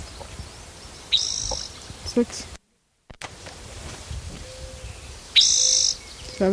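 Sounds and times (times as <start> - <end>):
Spotted Towhee song, high buzzy trill: 0.0 - 2.6, 4.3 - 6.5
background hiss: 0.0 - 6.5
speech: 2.2 - 2.6.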